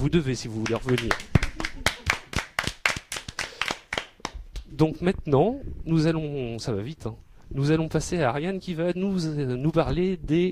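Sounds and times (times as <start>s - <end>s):
speech: 0.0s - 1.4s, 4.8s - 10.4s
small audience clapping after a talk: 0.4s - 4.7s.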